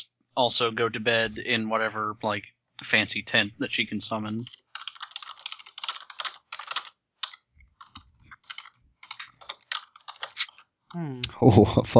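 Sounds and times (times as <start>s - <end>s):
speech: 0.4s - 4.6s, 10.9s - 11.9s
typing on a computer keyboard: 4.4s - 10.6s.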